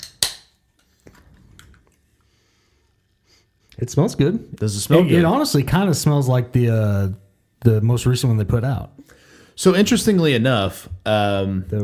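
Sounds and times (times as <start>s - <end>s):
Strawberry Blast flavoured energy drink can cracked open: 0.0s - 0.6s
speech: 3.8s - 11.8s.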